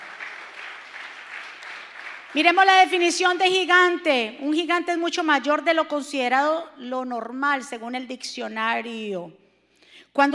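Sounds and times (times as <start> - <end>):
large crowd applauding: 0.0 - 2.6
speech: 2.3 - 9.4, 10.1 - 10.3.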